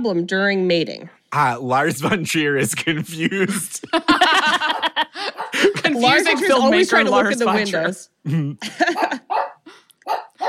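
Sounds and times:
speech: 0:00.0 - 0:09.4
laughter: 0:01.9 - 0:07.4, 0:08.3 - 0:09.4
female dog barking: 0:04.7 - 0:05.6, 0:09.0 - 0:10.4.

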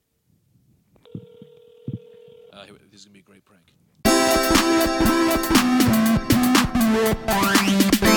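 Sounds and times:
telephone line tone: 0:01.0 - 0:02.6
speech: 0:02.6 - 0:06.0, 0:06.9 - 0:08.0.

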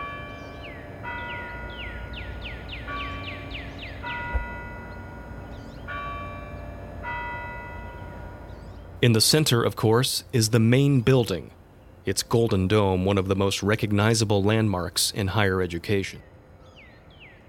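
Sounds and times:
basilica church bells pealing: 0:00.0 - 0:09.7
speech: 0:09.0 - 0:16.3.

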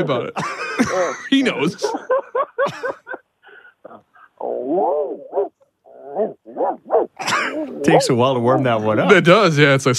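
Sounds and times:
person imitating a Dutch Shepherd dog barking, yelping and whining: 0:00.0 - 0:01.2, 0:03.8 - 0:08.6
speech: 0:00.0 - 0:03.0, 0:07.6 - 0:09.9
laughter: 0:00.0 - 0:03.3.

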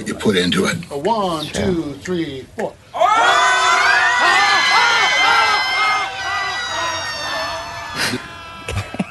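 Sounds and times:
speech: 0:00.0 - 0:03.3
scream choir screaming together in unison: 0:03.0 - 0:09.0.

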